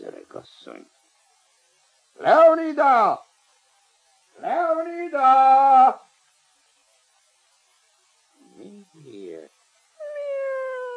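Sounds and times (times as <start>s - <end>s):
speech: 0.4s - 1.0s, 2.2s - 3.3s, 4.4s - 6.0s
cat meowing: 10.0s - 10.9s.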